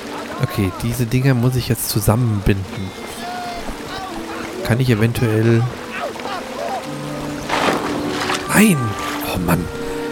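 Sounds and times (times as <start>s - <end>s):
steady ambient water sound: 0.0s - 10.1s
speech: 0.4s - 3.1s, 4.7s - 5.8s, 8.6s - 9.8s
game object splashing into water: 7.4s - 8.5s.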